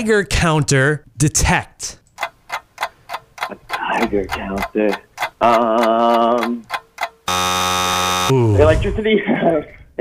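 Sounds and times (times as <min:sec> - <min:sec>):
speech: 0:00.0 - 0:02.0, 0:04.0 - 0:06.8, 0:08.3 - 0:09.9
harsh quiz game countdown buzzer: 0:07.2 - 0:08.5.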